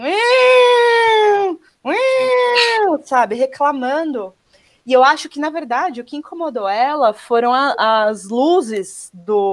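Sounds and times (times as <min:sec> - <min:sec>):
voice imitating a distressed cat meow: 0:00.0 - 0:02.9
speech: 0:03.1 - 0:09.5.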